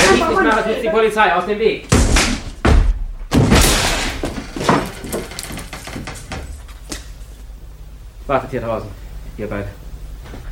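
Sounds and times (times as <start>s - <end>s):
speech: 0.5s - 2.0s, 8.3s - 9.8s
door being forced open with heavy thuds: 1.9s - 6.8s
rattling and scraping of forced door: 3.8s - 7.2s.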